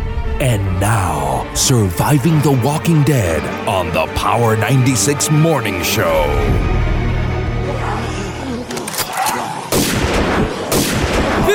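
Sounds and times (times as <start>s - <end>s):
speech: 0.4s - 7.0s
people shouting: 7.6s - 9.8s, 10.5s - 11.5s
gunfire sound effects: 9.1s - 11.5s.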